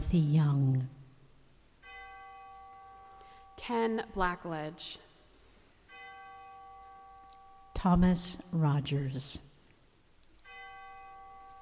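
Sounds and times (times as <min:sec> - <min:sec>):
speech: 0:00.1 - 0:01.0, 0:03.7 - 0:05.1, 0:07.8 - 0:09.5
soft memorial bell chime at a remembrance ceremony: 0:01.8 - 0:04.0, 0:05.9 - 0:07.9, 0:10.4 - 0:11.6.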